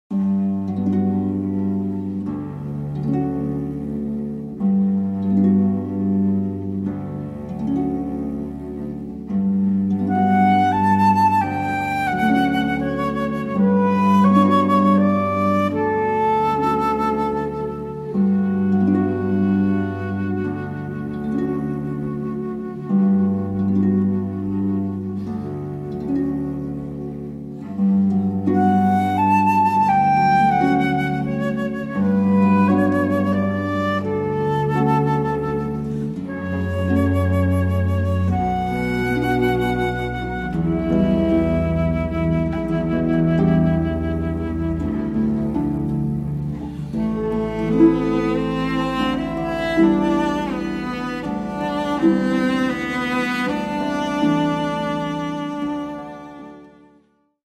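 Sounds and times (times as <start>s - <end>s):
cello: 0.1s - 57.4s
flute: 0.1s - 57.4s
harp: 0.1s - 57.4s.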